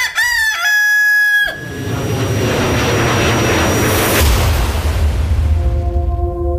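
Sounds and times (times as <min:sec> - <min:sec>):
rooster crowing: 0:00.0 - 0:01.8
deep rumbling whoosh: 0:01.7 - 0:06.5.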